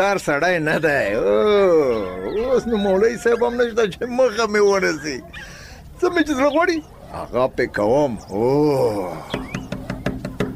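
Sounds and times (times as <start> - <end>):
speech: 0.0 - 9.4
knocking on the wooden door of a village guest house: 9.4 - 10.5.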